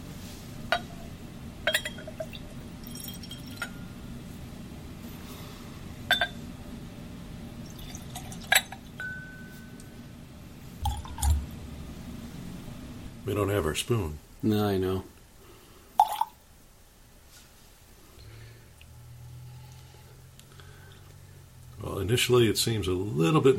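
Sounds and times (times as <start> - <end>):
low hum: 0.0 - 23.5
whisky being poured into a glass: 1.7 - 3.8, 7.6 - 9.0, 10.8 - 11.5, 16.0 - 16.4
light glassy clinks: 1.7 - 3.9, 6.1 - 6.4, 8.2 - 9.9
speech: 13.3 - 15.1, 22.1 - 23.5.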